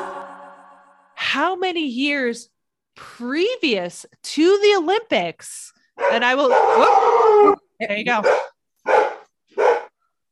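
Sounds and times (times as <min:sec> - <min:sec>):
speech: 0:01.4 - 0:08.4
dog barking in the distance: 0:08.2 - 0:10.0.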